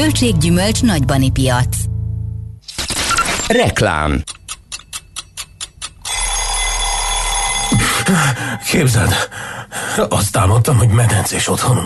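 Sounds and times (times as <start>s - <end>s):
speech: 0.1s - 1.9s, 3.5s - 4.4s, 8.1s - 11.8s
alarm clock ringing: 4.3s - 9.6s.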